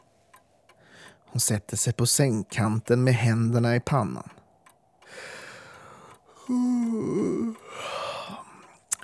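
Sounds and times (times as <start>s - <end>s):
speech: 1.4s - 4.4s
person yawning: 6.4s - 8.7s.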